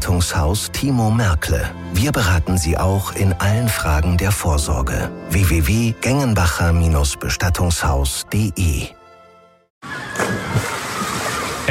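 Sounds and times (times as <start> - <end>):
speech: 0.1 - 9.0
water sloshing and splashing in a swimming pool: 9.8 - 11.6.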